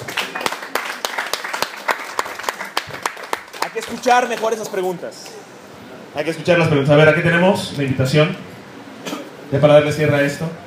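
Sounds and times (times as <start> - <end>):
audience applause at a comic convention trivia event: 0.0 - 4.8
speech: 3.8 - 5.4, 6.1 - 8.5, 9.5 - 10.6.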